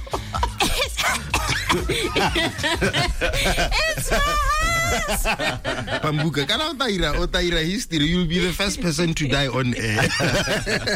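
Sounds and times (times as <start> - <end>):
loud coughs during a live radio broadcast: 0.2 - 3.6
snickering laughter: 1.5 - 6.3
speech: 1.7 - 10.9.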